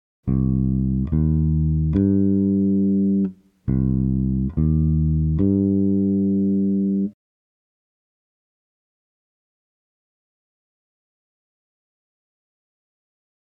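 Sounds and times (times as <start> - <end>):
bass minor triad: 0.3 - 7.2.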